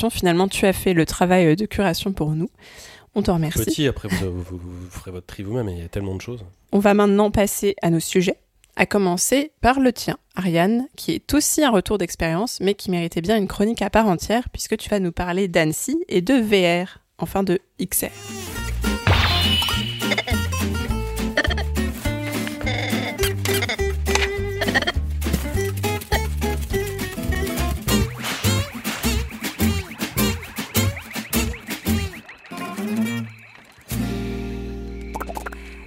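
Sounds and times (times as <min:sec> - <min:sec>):
speech: 0:00.0 - 0:19.9
steady bass line: 0:18.3 - 0:33.4
bright trailer and theme music track: 0:18.5 - 0:35.1
rapid rhythmic mouth-popping bubble sounds: 0:19.7 - 0:34.0, 0:34.9 - 0:35.8.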